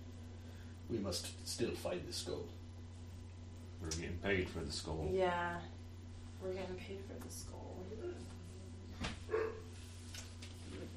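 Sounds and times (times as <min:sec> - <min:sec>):
speech: 0:00.9 - 0:02.6, 0:03.8 - 0:05.8, 0:06.4 - 0:08.4
dog barking while following a trail: 0:09.3 - 0:09.7.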